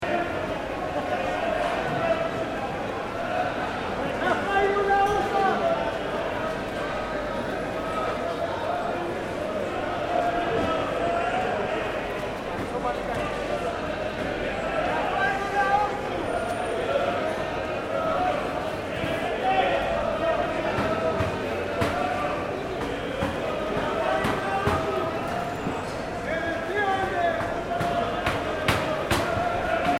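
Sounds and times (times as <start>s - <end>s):
dense crowd of people shouting and chatting in market square: 0.0s - 29.9s.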